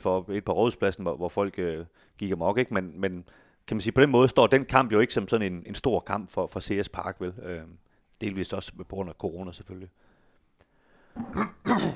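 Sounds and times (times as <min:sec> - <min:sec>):
speech: 0:00.0 - 0:10.1, 0:11.2 - 0:11.9
person coughing: 0:11.2 - 0:11.9
raspy throat clearing: 0:11.2 - 0:11.9.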